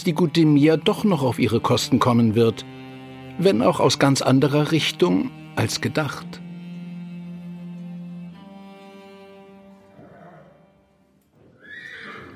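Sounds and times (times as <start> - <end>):
speech: 0.0 - 2.8, 3.4 - 6.4
horse whinnying: 9.9 - 10.6, 11.4 - 12.3.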